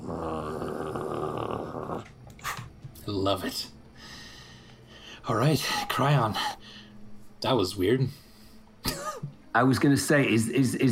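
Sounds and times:
person imitating a wolf growl: 0.0 - 2.1
speech: 3.1 - 3.8, 5.3 - 6.8, 7.4 - 8.2, 9.5 - 10.9.

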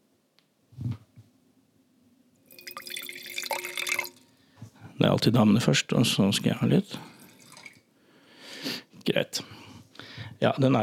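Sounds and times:
Sicilian Nero d'Avola red wine poured into glasses: 2.4 - 4.4, 6.9 - 7.8
speech: 5.0 - 7.1, 10.4 - 10.8.

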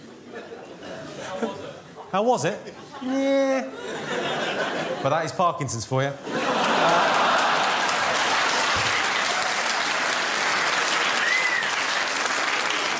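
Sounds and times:
speech: 1.4 - 4.2, 5.0 - 7.2
laughter: 2.6 - 5.3, 6.2 - 11.1
comedy audience applause after a joke: 6.4 - 12.9.

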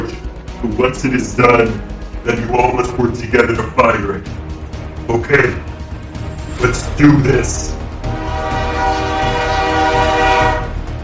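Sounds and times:
speech: 0.6 - 4.4, 5.1 - 5.7, 6.6 - 7.8
sustained shrill train horn blaring: 8.0 - 11.0.

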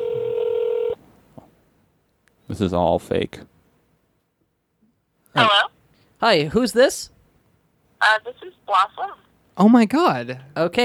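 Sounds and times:
outgoing phone call ring tone: 0.0 - 1.0
speech: 2.5 - 3.6, 5.4 - 7.2, 8.0 - 10.8.

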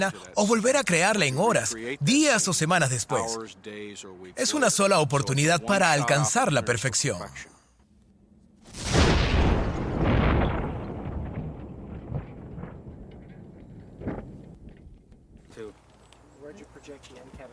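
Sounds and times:
speech: 0.0 - 7.6, 16.8 - 17.5
powerful pipe bomb explosion rolling into a long rumble: 8.6 - 14.7
scattered debris: 8.6 - 15.4.

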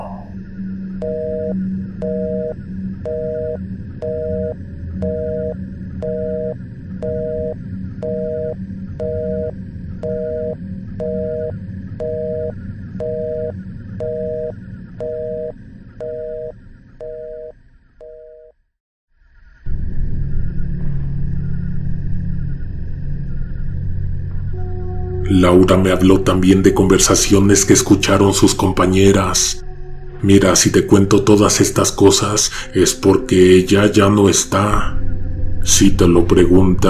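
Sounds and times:
low rumble: 0.0 - 18.0, 19.4 - 36.8
telephone busy tone as a call disconnects: 1.0 - 18.6
speech: 25.4 - 29.6, 30.2 - 35.0, 35.6 - 36.8.

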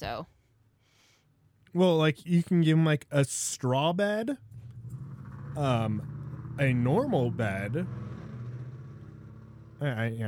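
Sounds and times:
speech: 0.0 - 0.4, 1.7 - 4.5, 5.6 - 8.0, 9.8 - 10.2
heavy truck engine passing outside: 4.3 - 10.2.

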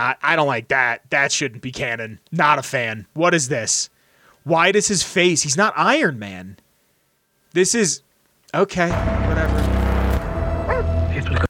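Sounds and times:
speech: 0.0 - 6.6, 7.5 - 9.8
dog yipping: 10.7 - 10.9.

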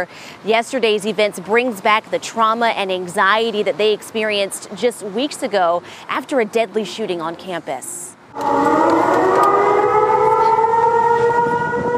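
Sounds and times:
speech: 0.0 - 9.5
campus emergency lockdown siren wailing: 8.3 - 11.9.

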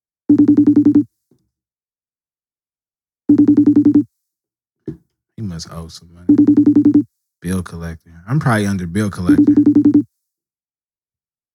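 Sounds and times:
speech: 0.3 - 0.9, 5.4 - 10.1
phone ringing tone on an outgoing call: 0.3 - 1.1, 3.3 - 4.1, 6.3 - 7.0, 9.2 - 10.1.

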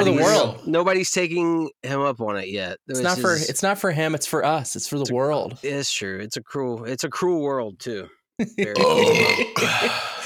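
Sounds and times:
speech: 0.0 - 10.2
gravelly belch: 8.7 - 9.9
loud drawn-out burp: 8.7 - 10.0.

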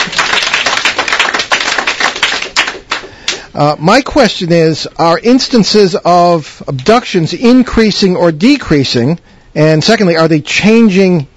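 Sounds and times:
audience at a panel discussion clapping: 0.0 - 3.5
speech: 3.6 - 11.3.

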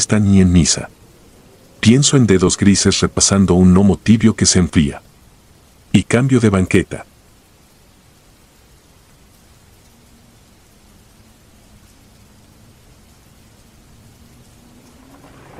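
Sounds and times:
speech: 0.0 - 1.0, 1.8 - 5.1, 5.9 - 7.1
faint low rumble: 0.0 - 6.2, 10.4 - 15.5
steady rain: 0.0 - 15.5.

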